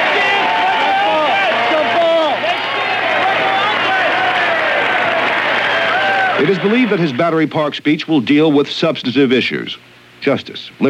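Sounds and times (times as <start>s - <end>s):
huge stadium crowd cheering and shouting: 0.0s - 7.7s
speech: 6.4s - 10.8s.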